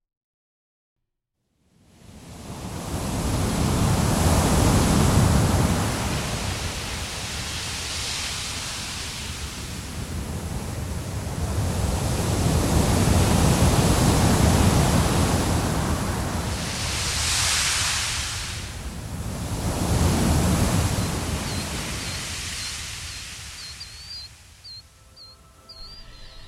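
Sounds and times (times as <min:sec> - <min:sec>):
ocean waves washing onto the shore: 0:01.9 - 0:26.4
faint chirping bird: 0:20.6 - 0:26.4.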